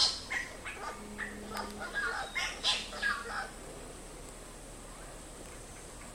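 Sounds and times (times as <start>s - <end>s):
Mayotte drongo singing: 0.1s - 3.6s.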